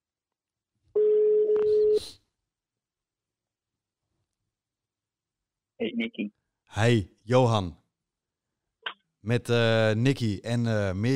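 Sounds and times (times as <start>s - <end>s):
steady telephone tone of a call being dialed: 1.0s - 2.0s
speech: 5.8s - 7.8s, 9.2s - 11.1s.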